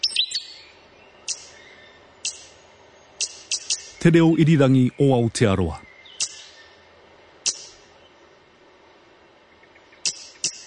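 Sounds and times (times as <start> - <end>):
stitchbird giving sharp high-pitched calls: 1.2 - 4.3, 6.0 - 6.7, 7.4 - 7.9, 10.0 - 10.6
speech: 4.0 - 5.9.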